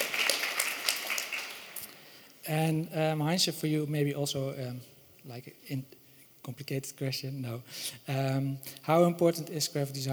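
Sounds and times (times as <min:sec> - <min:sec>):
crowd applauding: 0:00.0 - 0:02.0
speech: 0:02.5 - 0:10.1.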